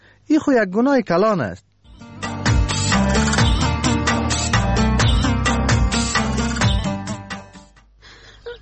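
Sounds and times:
speech: 0.3s - 1.7s
dense rhythmic music: 1.9s - 7.8s.

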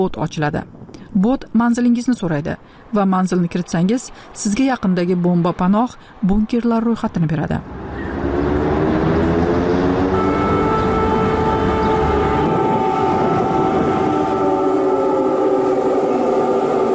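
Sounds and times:
speech: 0.0s - 7.8s
air raid siren wailing over Kyiv: 7.6s - 16.9s.

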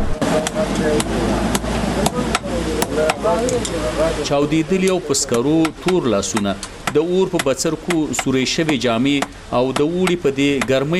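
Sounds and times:
rough noise: 0.0s - 10.9s
speech: 0.4s - 10.9s
blacksmith hammering iron sheets in a blacksmiths' bazaar: 2.8s - 3.2s.

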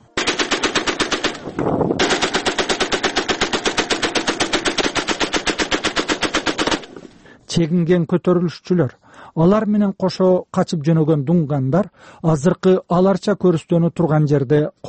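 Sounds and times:
machine-gun fire war sound effect: 0.0s - 7.1s
speech: 7.6s - 14.8s.

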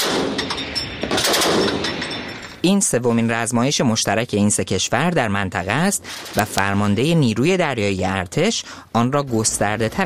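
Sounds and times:
rapid gunfire barrage at a joint military shooting exercise: 0.0s - 2.2s
speech: 2.6s - 10.0s.

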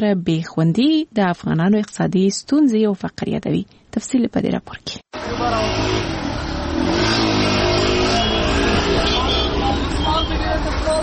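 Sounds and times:
speech: 0.0s - 7.3s
car engines revving and accelerating in city streets in Takhar province: 5.2s - 11.0s
loud city traffic roar in Takhar province: 5.2s - 11.0s.

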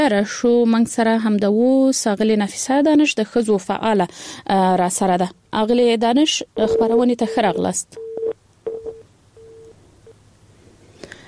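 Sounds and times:
speech: 0.0s - 8.0s
telephone dialing tones on a faulty phone line: 6.6s - 9.8s.

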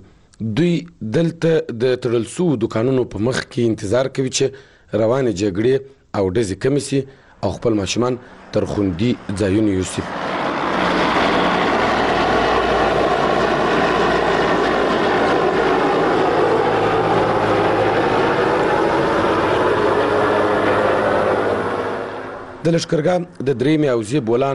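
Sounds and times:
speech: 0.4s - 10.3s, 22.6s - 24.5s
aircraft engines droning over Lashkar Gah during fighting: 7.1s - 23.0s.

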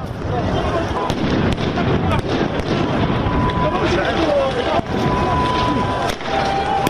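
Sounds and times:
indistinct voices: 0.0s - 6.8s
sharp explosions: 0.0s - 6.8s
thin steady siren-like tone: 3.2s - 6.8s.

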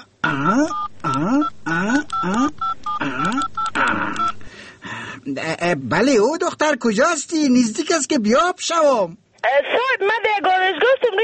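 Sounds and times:
speech: 0.3s - 0.8s, 5.4s - 11.2s
telephone keypad tones while dialing a number: 0.4s - 4.5s.

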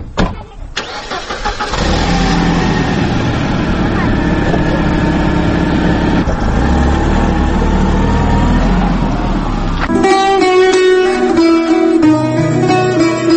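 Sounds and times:
car engine idling with a mid-pitched rumble: 0.8s - 10.1s
car engine cranking and starting as passengers board: 0.8s - 11.6s
music: 9.9s - 13.3s.

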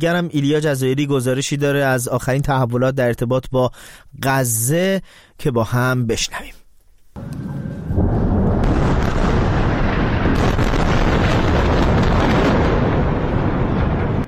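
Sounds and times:
speech: 0.0s - 6.6s
bombing explosions: 7.2s - 14.2s.

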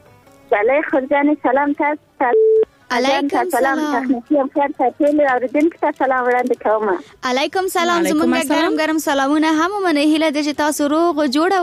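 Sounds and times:
speech: 0.5s - 11.6s
electronic beep of a telephone call being connected: 2.3s - 2.7s.

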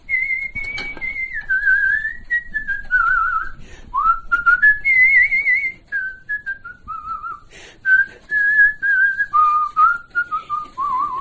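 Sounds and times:
person whistling a remembered song melody: 0.0s - 11.1s
person breathing between whistled phrases: 3.6s - 4.0s, 7.4s - 8.3s.

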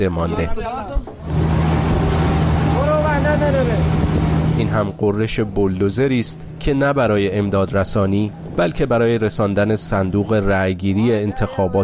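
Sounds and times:
speech: 0.0s - 1.4s, 3.2s - 11.8s
fuel tanker truck engine drone on a flood-hit road: 1.2s - 11.1s.

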